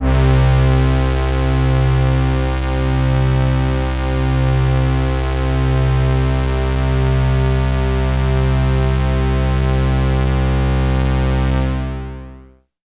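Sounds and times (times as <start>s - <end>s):
Prophet 5 synthesizer brass lead one-shot in C: 0.0s - 12.6s.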